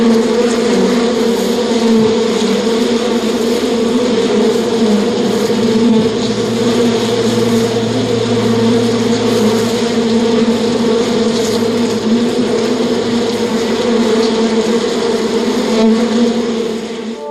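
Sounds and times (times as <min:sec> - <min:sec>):
bee buzzing: 0:00.0 - 0:17.2
brief tonal sound: 0:05.2 - 0:13.6.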